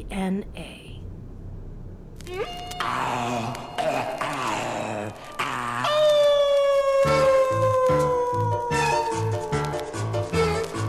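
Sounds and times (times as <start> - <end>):
speech: 0.0 - 0.8, 2.3 - 4.1
howl: 2.3 - 10.7.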